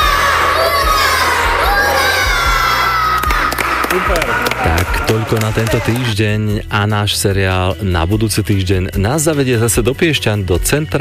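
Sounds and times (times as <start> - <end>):
group of children shouting hurray: 0.0 - 4.0
crowd roar: 0.0 - 6.1
speech: 4.0 - 11.0.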